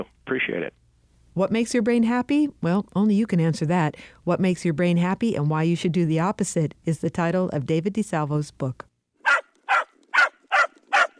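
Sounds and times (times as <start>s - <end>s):
speech: 0.4s - 0.8s, 1.4s - 8.9s
dog barking: 9.2s - 11.1s.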